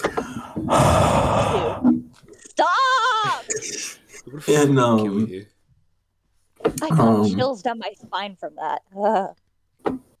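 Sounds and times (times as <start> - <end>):
puff of breath: 0.0 - 1.9
speech: 4.4 - 5.6, 6.8 - 10.0.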